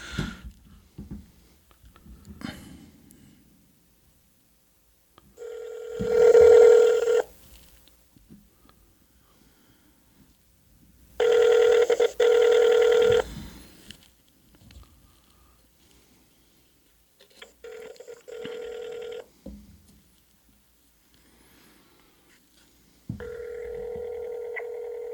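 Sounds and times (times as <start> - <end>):
buzzy electronic phone line ringing through the receiver: 5.4 - 7.3, 11.2 - 13.3, 17.5 - 19.3, 23.2 - 25.1.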